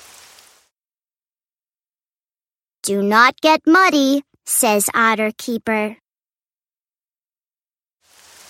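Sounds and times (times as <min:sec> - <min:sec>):
steady hissing rainfall: 0:00.0 - 0:00.7, 0:08.0 - 0:08.4
speech: 0:02.9 - 0:06.0.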